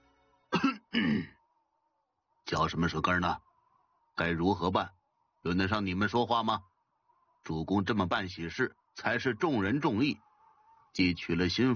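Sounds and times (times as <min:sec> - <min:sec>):
man coughing to clear his throat: 0:00.5 - 0:01.4
speech: 0:01.0 - 0:01.4, 0:02.5 - 0:03.5, 0:04.2 - 0:06.7, 0:07.4 - 0:10.3, 0:10.9 - 0:11.7.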